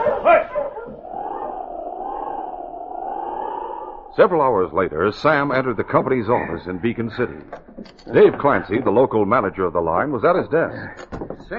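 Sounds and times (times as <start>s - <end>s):
sled dog barking: 0.0s - 1.5s
sled dog howling: 0.0s - 6.5s
speech: 4.2s - 11.5s.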